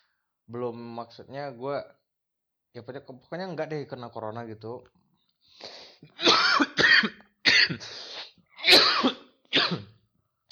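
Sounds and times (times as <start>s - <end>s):
speech: 0.5s - 2.0s, 2.7s - 8.1s
harsh coughing fit: 6.1s - 10.0s.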